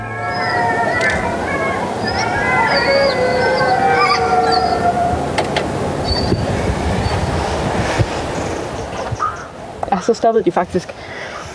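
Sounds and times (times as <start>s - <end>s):
several wolves howling: 0.0s - 7.5s
steady low rumble of noise: 0.0s - 11.2s
speech: 10.0s - 11.1s.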